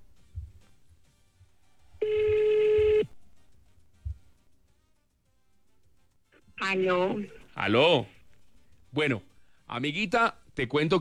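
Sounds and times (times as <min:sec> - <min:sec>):
faint low thumps: 0:00.0 - 0:00.7, 0:03.9 - 0:04.4
cell phone ringing with an electronic tone: 0:02.0 - 0:03.1
speech: 0:06.7 - 0:08.2, 0:08.9 - 0:10.9.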